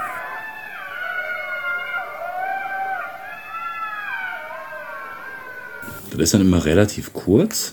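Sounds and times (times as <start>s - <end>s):
pack of jackals howling in the evening in front of a village: 0.0s - 6.1s
steady hiss: 0.0s - 7.7s
speech: 6.1s - 7.7s.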